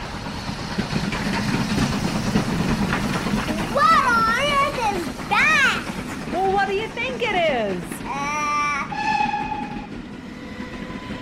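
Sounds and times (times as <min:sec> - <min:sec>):
train rumbling along the rails: 0:00.0 - 0:11.1
loud sustained train horn blaring: 0:08.9 - 0:11.1.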